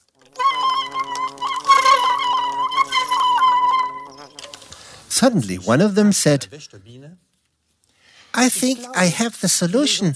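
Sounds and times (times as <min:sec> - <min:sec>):
bees buzzing: 0:00.0 - 0:05.1
speech: 0:05.2 - 0:07.3, 0:08.4 - 0:10.1.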